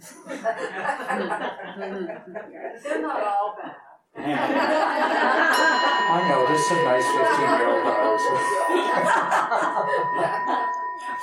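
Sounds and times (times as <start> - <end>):
room of people laughing: 0.0 - 3.4, 4.2 - 11.2
speech: 0.4 - 10.6
room of people murmuring: 1.2 - 11.2
bell ringing to mark session end: 5.1 - 11.2.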